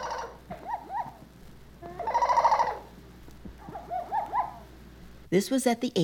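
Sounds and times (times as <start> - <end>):
mynah bird jungle call from a tape recording: 0.0 - 3.0, 3.6 - 4.8
speech: 5.3 - 6.0.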